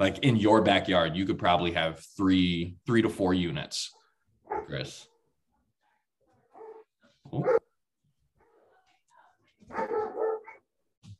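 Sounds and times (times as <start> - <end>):
speech: 0.0 - 4.0, 4.6 - 5.1, 7.3 - 7.6
dog barking: 4.0 - 5.3, 6.5 - 7.7, 9.7 - 10.7.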